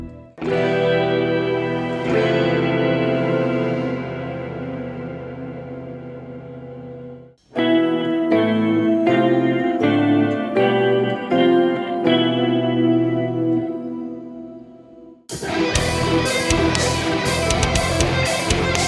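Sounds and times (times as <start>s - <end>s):
metal guitar scale: 0.4s - 6.4s, 7.4s - 18.8s.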